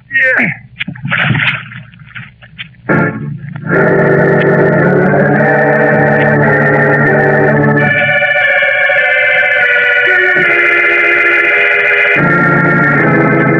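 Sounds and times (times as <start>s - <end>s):
rough sloshing of water: 0.6s - 2.9s
heavy body-sized splash into water from a ship at sea: 1.0s - 1.9s
sustained loud music: 2.9s - 13.5s.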